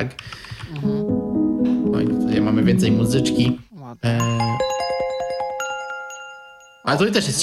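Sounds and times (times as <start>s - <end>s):
speech: 0.0s - 1.0s, 2.0s - 4.7s, 6.9s - 7.4s
melodic electronic phone ringtone: 4.2s - 7.0s.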